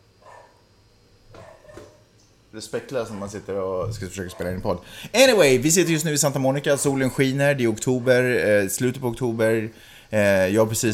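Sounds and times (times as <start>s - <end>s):
low steady hum: 0.0s - 10.9s
dog barking in the background in Santa Monica: 0.2s - 0.6s, 1.3s - 2.0s, 3.1s - 3.4s, 4.3s - 4.6s
speech: 2.5s - 10.9s.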